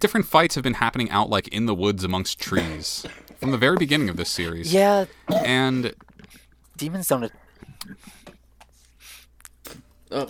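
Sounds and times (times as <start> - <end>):
speech: 0.0 - 6.1, 6.8 - 8.2, 9.7 - 10.2
harsh hard coughs: 5.3 - 5.6.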